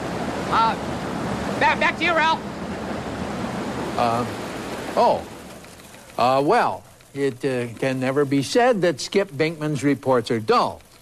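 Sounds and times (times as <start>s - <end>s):
rushing water cycling through a theme park flume ride: 0.0s - 8.7s
speech: 0.5s - 1.0s, 1.6s - 2.5s, 4.0s - 4.4s, 5.0s - 5.3s, 6.2s - 10.8s.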